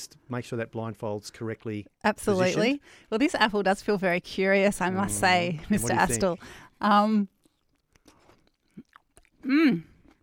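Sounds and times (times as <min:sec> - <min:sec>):
speech: 0:00.0 - 0:07.4, 0:09.4 - 0:09.9
wet chewing of a piece of orange: 0:07.2 - 0:10.2
mouth clicks and squelches while chewing orange: 0:07.3 - 0:10.2.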